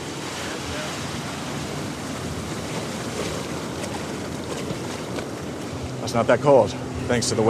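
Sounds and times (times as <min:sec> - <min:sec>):
ocean surf breaking: 0:00.0 - 0:07.4
speech: 0:06.1 - 0:07.4.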